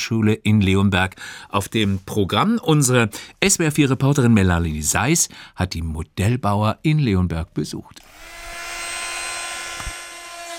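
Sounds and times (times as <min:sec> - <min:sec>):
speech: 0:00.0 - 0:08.4
small drill boring a hole in wood: 0:08.0 - 0:10.5.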